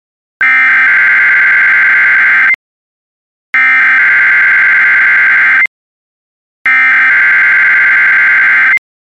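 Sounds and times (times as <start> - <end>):
NOAA weather radio warning alarm tone: 0.4 - 2.6, 3.6 - 5.7, 6.7 - 8.8.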